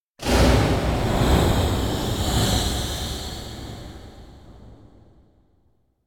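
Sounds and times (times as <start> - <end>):
hovering air whoosh: 0.2 - 4.9.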